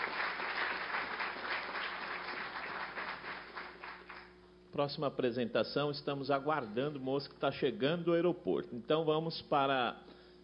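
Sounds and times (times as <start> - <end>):
audience applause: 0.0 - 4.4
speech: 4.8 - 10.1.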